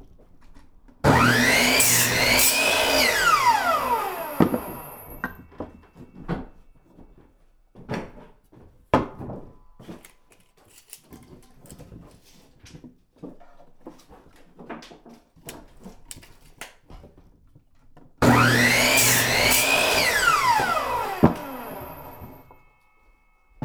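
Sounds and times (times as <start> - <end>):
hammering: 1.0 - 6.5, 18.2 - 22.6
saw sawing: 1.0 - 6.5, 18.2 - 22.7.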